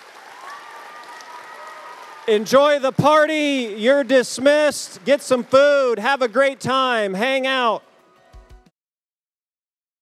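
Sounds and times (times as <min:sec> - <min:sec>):
audience applauding: 0:00.0 - 0:07.8
speech: 0:02.3 - 0:07.9.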